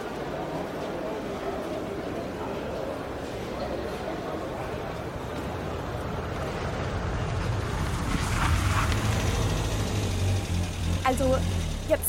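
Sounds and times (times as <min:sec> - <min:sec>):
steady crowd murmur in a radio-play street scene: 0:00.0 - 0:10.1
traffic rumble: 0:00.0 - 0:12.0
car engine: 0:05.5 - 0:12.0
speech: 0:11.2 - 0:12.0.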